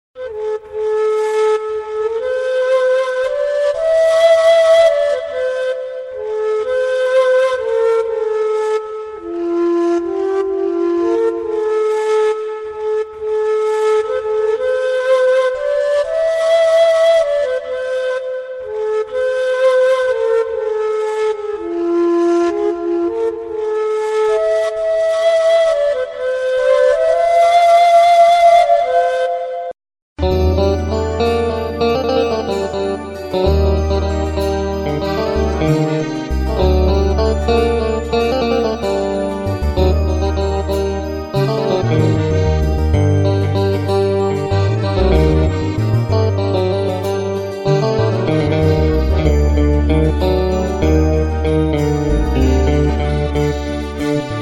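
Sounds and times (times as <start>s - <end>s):
ney flute: 0.2s - 54.4s
electric guitar: 30.2s - 54.4s.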